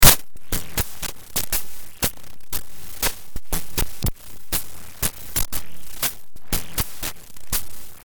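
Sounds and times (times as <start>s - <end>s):
FM7 synthesizer patches: 0.0s - 8.0s.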